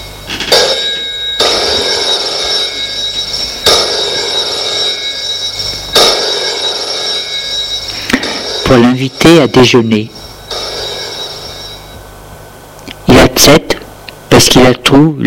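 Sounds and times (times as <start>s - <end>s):
old-style telephone bell ringing: 0.0s - 12.1s
speech: 8.7s - 10.2s, 13.4s - 13.8s, 14.4s - 15.2s.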